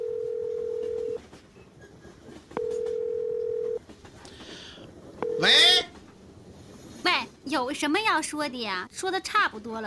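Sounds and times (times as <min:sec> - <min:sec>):
phone ringback tone while calling a mobile phone: 0:00.0 - 0:01.2, 0:02.6 - 0:03.8, 0:05.2 - 0:05.8
speech: 0:07.5 - 0:09.8.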